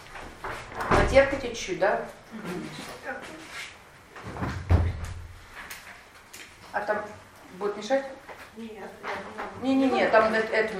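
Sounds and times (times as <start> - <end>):
door swinging shut with a muffled low thud and rattle: 0.8 - 1.4, 4.2 - 5.4
speech: 1.1 - 3.5, 6.8 - 10.7.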